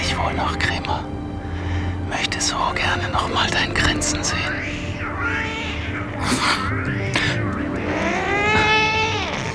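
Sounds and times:
speech: 0.2 - 1.3, 2.1 - 5.5, 6.2 - 7.4
two tomcats fighting and yowling: 3.8 - 9.5.

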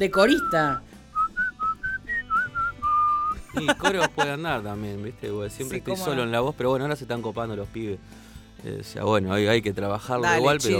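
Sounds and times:
speech: 0.0 - 0.9, 3.6 - 10.7
person whistling short clear notes: 0.2 - 3.5
laughter: 3.4 - 4.6.

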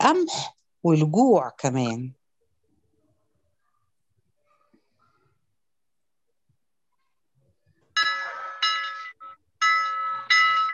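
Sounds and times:
speech: 0.0 - 2.2
harbour bell ringing to signal an accident: 8.0 - 10.7.

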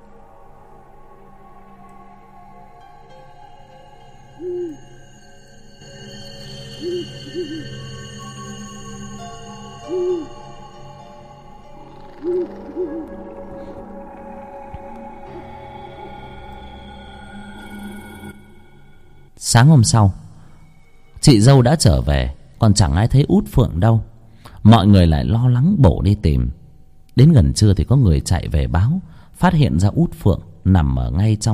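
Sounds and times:
owl hooting from a tree branch: 0.0 - 18.6
steady low drone: 0.0 - 23.2
speech: 19.5 - 20.2, 21.2 - 26.6, 27.2 - 31.5.

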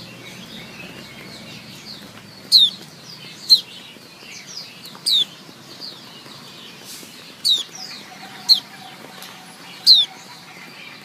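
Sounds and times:
female white-eye calling: 7.4 - 11.0.

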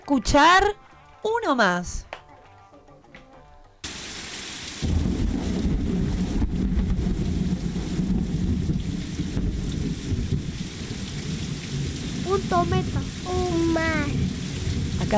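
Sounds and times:
speech: 0.1 - 2.1, 12.3 - 14.2
heavy rain hissing in a thunderstorm: 3.8 - 15.1
deep thunder rumbling: 4.7 - 15.1.

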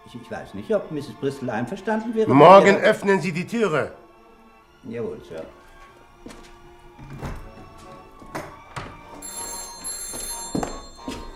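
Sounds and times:
speech: 0.1 - 4.0, 4.8 - 5.6, 6.2 - 6.5
telephone ringing in an apartment: 9.0 - 11.3.

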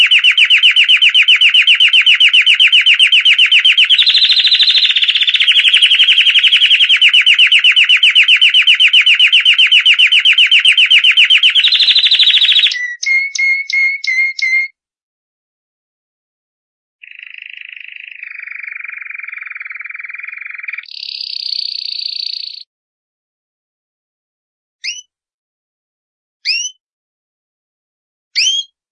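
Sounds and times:
champion canary song: 0.0 - 14.8, 17.0 - 22.7, 24.8 - 25.1, 26.4 - 26.8, 28.4 - 28.8.

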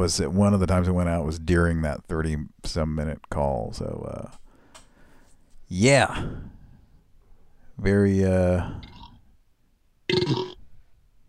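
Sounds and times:
speech: 0.0 - 4.4, 5.7 - 6.6, 7.8 - 8.9
loud raspy burp: 8.8 - 9.2, 10.1 - 10.6.

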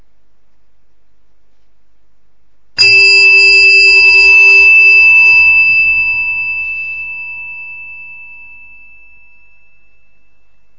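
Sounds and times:
temple bell strike ringing during a Buddhist meditation session: 2.8 - 10.5.

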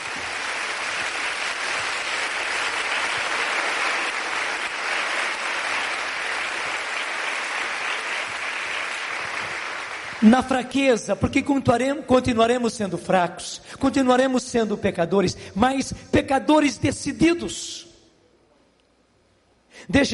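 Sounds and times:
audience applause at a Catholic sermon: 0.0 - 10.3
speech: 10.2 - 17.9, 19.8 - 20.1.

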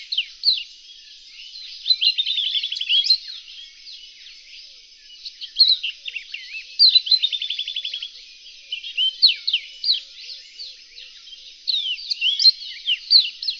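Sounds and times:
Reunion olive white-eye song: 0.0 - 13.5.

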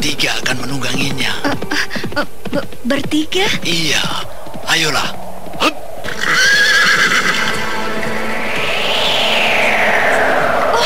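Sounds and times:
speech: 0.0 - 1.0, 2.2 - 6.5
continuous noisy rush: 0.0 - 10.8
horse whinnying: 6.1 - 7.6.

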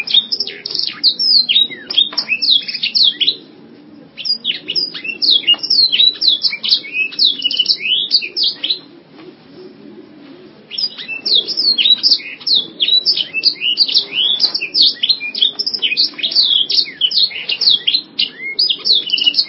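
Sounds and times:
canary song: 0.0 - 3.5, 4.2 - 8.9, 10.7 - 19.4.

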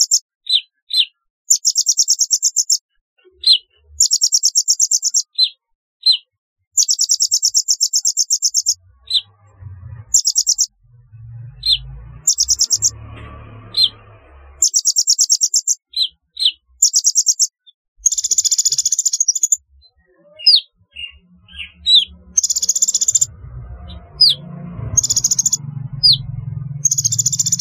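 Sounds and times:
sunbird chirps and buzzing trills: 0.0 - 27.5
faint low rumble: 8.8 - 14.6, 20.9 - 27.5.

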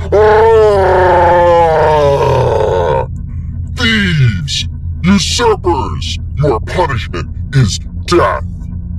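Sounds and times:
furious monstrous roar from an angry chieftain: 0.0 - 3.1
speech: 5.2 - 8.6.

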